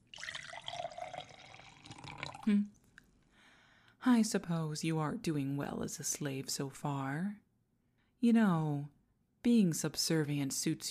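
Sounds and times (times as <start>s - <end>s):
liquid pouring into a glass: 0.0s - 2.5s
speech: 2.4s - 2.8s, 4.0s - 7.4s, 8.2s - 10.8s.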